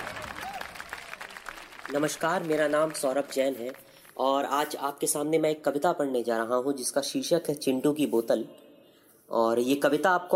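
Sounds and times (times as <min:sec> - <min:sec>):
audience clapping at a poetry recital: 0:00.0 - 0:04.6
speech: 0:01.9 - 0:08.6, 0:09.3 - 0:10.3.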